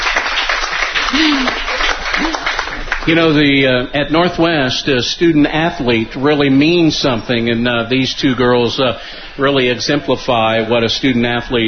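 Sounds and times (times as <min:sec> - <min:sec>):
audience applause for two honored student athletes: 0:00.0 - 0:03.4
speech: 0:03.1 - 0:11.6.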